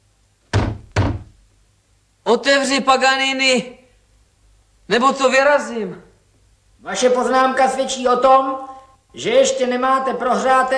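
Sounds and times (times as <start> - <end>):
door being shut and locked: 0.5 - 1.4
speech: 2.3 - 3.8, 4.9 - 6.0, 6.8 - 10.7.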